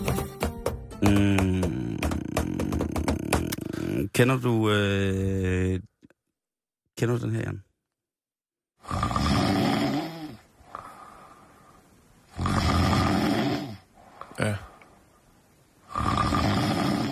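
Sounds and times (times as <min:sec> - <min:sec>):
speech: 0:01.0 - 0:01.7, 0:04.1 - 0:05.9, 0:07.0 - 0:07.7
person snoring: 0:01.0 - 0:04.1, 0:08.8 - 0:14.9, 0:15.8 - 0:17.1
person breathing: 0:03.5 - 0:04.0, 0:10.4 - 0:12.1, 0:13.9 - 0:15.2.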